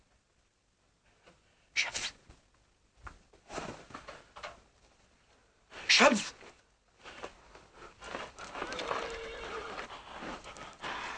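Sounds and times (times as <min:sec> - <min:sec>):
rustling: 0:02.3 - 0:05.5, 0:06.4 - 0:11.1
speech: 0:06.0 - 0:06.4
hoof clops: 0:08.0 - 0:11.1
horse whinnying loudly with shrill wavering neigh: 0:08.5 - 0:09.9.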